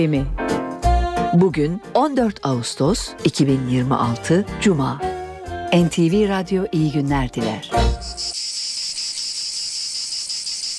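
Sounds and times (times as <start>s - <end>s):
speech: 0.0s - 0.5s, 1.3s - 5.1s, 5.7s - 8.4s
cicadas singing on a summer day: 7.8s - 10.7s.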